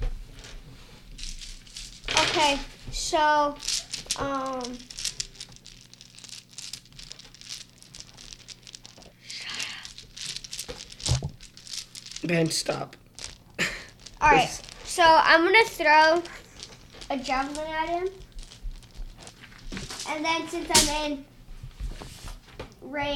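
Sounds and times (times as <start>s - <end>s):
dice rattling in a cloth dice bag: 1.1s - 20.9s
speech: 2.4s - 4.9s, 12.2s - 13.0s, 14.2s - 16.4s, 17.1s - 18.2s, 20.1s - 21.3s, 22.9s - 23.1s.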